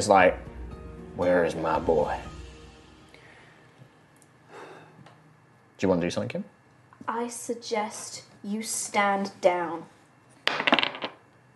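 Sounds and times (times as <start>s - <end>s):
speech: 0.0s - 0.5s, 1.2s - 2.3s, 5.8s - 6.5s, 7.1s - 9.9s
die clattering across a hard tabletop: 10.5s - 11.2s.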